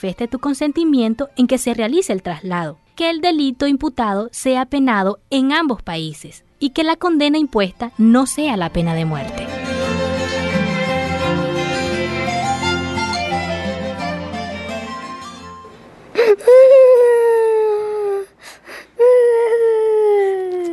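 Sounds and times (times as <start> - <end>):
music: 0.0 - 4.9, 5.7 - 15.8
speech: 0.0 - 9.7
child crying with wailing sobs and whimpering gasps: 16.2 - 18.4, 19.0 - 20.7.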